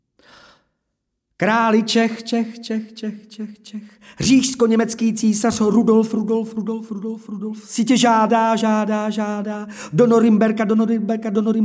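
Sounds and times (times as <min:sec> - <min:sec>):
man's voice mimicking an echo in Czech: 0:01.4 - 0:11.6
speech: 0:01.4 - 0:11.6.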